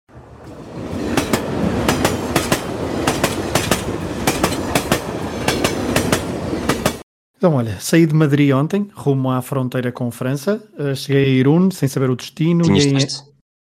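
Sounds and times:
train running on rails with wheels clickety-clack: 0:00.9 - 0:07.0
speech: 0:07.4 - 0:13.3.

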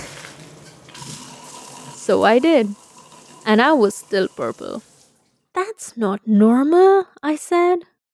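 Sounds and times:
shower water running: 0:00.0 - 0:05.4
speech: 0:02.1 - 0:02.8, 0:03.4 - 0:04.9, 0:05.6 - 0:07.9.

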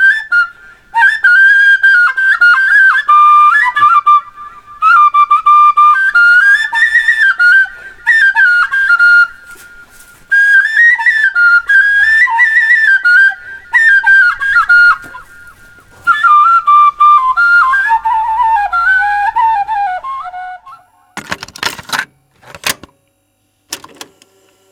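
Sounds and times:
end-blown metal flute without fipple playing a folk melody: 0:00.0 - 0:21.2
clicks and knocks: 0:21.2 - 0:23.0.

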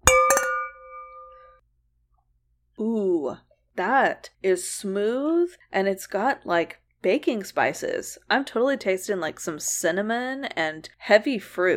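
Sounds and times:
wine glasses clinking in a toast: 0:00.0 - 0:01.5
speech: 0:02.8 - 0:11.7.

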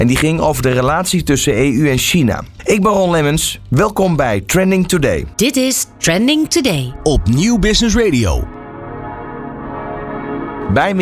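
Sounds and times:
speech: 0:00.0 - 0:08.6, 0:10.7 - 0:11.0
church bells pealing in Strasbourg: 0:06.2 - 0:11.0.

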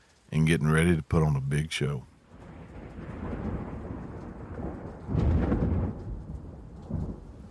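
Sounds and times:
steady rain hissing: 0:00.0 - 0:07.4
speech: 0:00.3 - 0:02.1
thunder rumbling overhead: 0:01.6 - 0:07.4.

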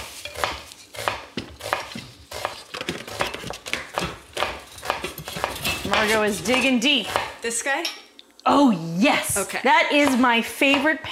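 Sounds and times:
knife chopping an onion in a kitchen: 0:00.0 - 0:07.4, 0:09.9 - 0:11.1
speech: 0:06.0 - 0:11.1.

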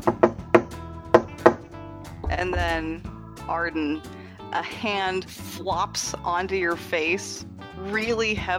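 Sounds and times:
hollow knocks on a door: 0:00.0 - 0:03.2
speech: 0:02.4 - 0:08.5.

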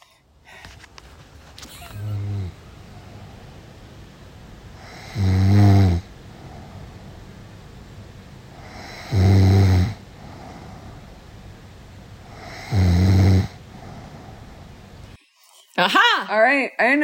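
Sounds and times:
quiet breathing of sleeping person: 0:00.0 - 0:01.3, 0:02.1 - 0:03.8, 0:04.6 - 0:15.7
person snoring loudly while asleep: 0:02.0 - 0:02.6, 0:04.8 - 0:06.8, 0:08.5 - 0:11.0, 0:12.3 - 0:14.4
speech: 0:15.8 - 0:17.0.

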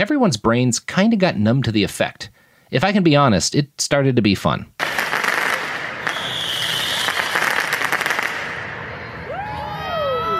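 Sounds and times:
speech: 0:00.0 - 0:04.9
commercial-grade fireworks exploding at a night protest: 0:04.8 - 0:09.8
high whistling firework rockets sliding downward in pitch: 0:04.8 - 0:09.8
roar of a large outdoor protest crowd: 0:06.0 - 0:10.3.

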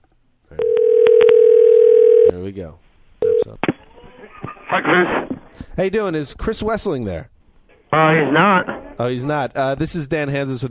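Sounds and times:
telephone dial tone: 0:00.6 - 0:02.3
speech: 0:02.5 - 0:03.6, 0:04.7 - 0:07.3, 0:07.9 - 0:10.6.

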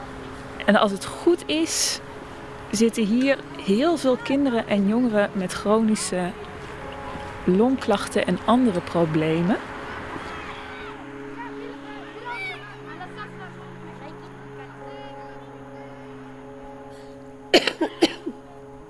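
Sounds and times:
faint indistinct chatter: 0:00.0 - 0:18.8
speech: 0:00.7 - 0:02.1, 0:02.7 - 0:06.5, 0:07.4 - 0:09.7
sharp coughs: 0:17.5 - 0:18.4.

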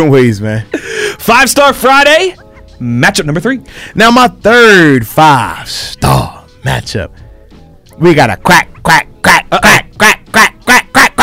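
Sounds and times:
speech: 0:00.0 - 0:07.2, 0:08.0 - 0:10.5
duck quacking: 0:08.5 - 0:11.2.

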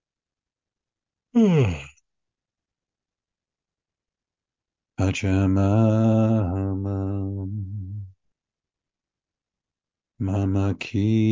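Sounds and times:
speech: 0:01.4 - 0:01.8, 0:05.2 - 0:07.8, 0:10.2 - 0:11.3
drawn-out yawn falling in pitch: 0:01.4 - 0:01.9.

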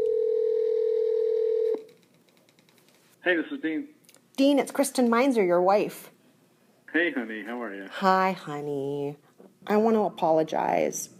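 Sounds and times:
telephone dialing tone: 0:00.0 - 0:01.9
speech: 0:03.2 - 0:06.2, 0:06.9 - 0:11.1.

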